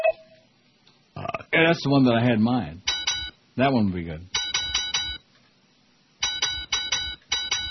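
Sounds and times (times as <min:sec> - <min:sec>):
speech: 0:01.6 - 0:02.8, 0:03.6 - 0:04.4
small bell ringing: 0:04.4 - 0:05.2, 0:06.2 - 0:07.6.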